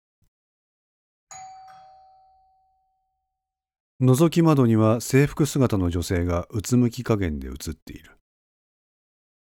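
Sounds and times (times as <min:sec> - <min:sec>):
hotel room intercom doorbell ding-dong chime: 0:01.3 - 0:03.4
speech: 0:04.0 - 0:08.2.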